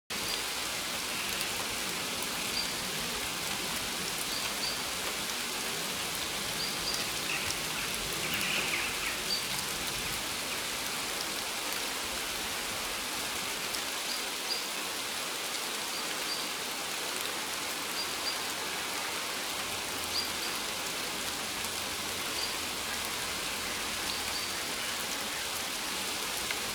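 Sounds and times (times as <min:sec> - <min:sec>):
rain in the jungle: 0:00.0 - 0:26.7
birds in the jungle: 0:00.2 - 0:11.0, 0:22.2 - 0:26.7.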